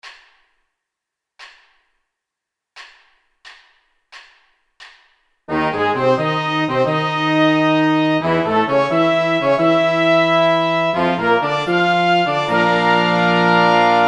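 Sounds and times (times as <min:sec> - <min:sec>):
upbeat charge music: 0:05.5 - 0:14.0.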